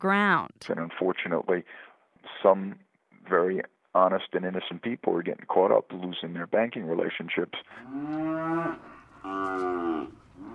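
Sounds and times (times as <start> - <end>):
speech: 0.0 - 10.2
cattle mooing at a feedlot: 7.7 - 10.5.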